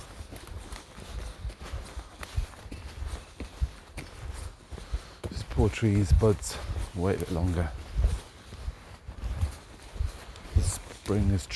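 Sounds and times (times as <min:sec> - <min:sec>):
footsteps walking outdoors in very cold weather: 0:00.0 - 0:11.5
speech: 0:05.6 - 0:07.8, 0:11.1 - 0:11.5.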